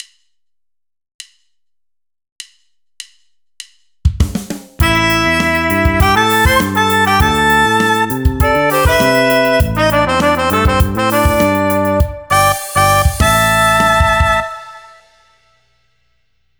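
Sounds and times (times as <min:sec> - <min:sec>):
horn section playing: 0:04.8 - 0:15.1.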